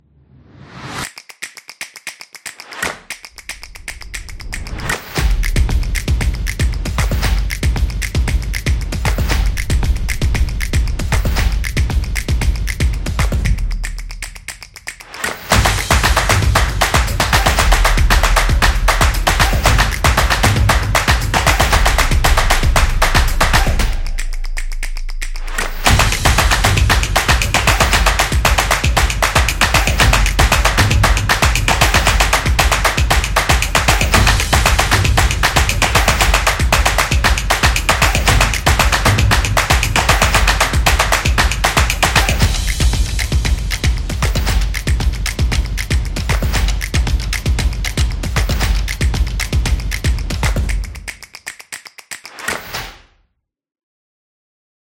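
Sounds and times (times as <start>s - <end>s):
upbeat claps: 1.0s - 53.0s
upbeat kick drum: 5.2s - 13.8s, 15.5s - 24.0s, 25.6s - 51.1s.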